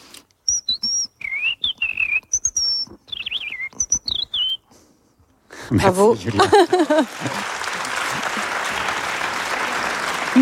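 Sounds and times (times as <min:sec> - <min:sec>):
whistled imitation of a European robin song: 0:00.4 - 0:04.7
speech: 0:05.7 - 0:07.6
laughter: 0:06.2 - 0:10.4.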